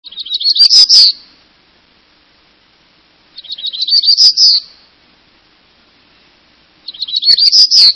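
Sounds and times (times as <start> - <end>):
Black-throated Gray Warbler: 0.0 - 1.5, 3.3 - 5.0, 6.0 - 7.9.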